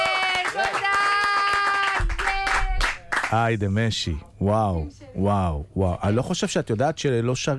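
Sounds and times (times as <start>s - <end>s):
audience applause: 0.0s - 3.4s
speech: 3.3s - 7.5s.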